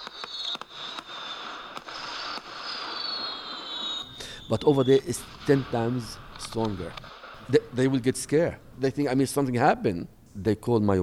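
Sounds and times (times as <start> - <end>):
fireworks at Disneyland cracking and popping: 0.0 - 8.3
speech: 4.5 - 11.0.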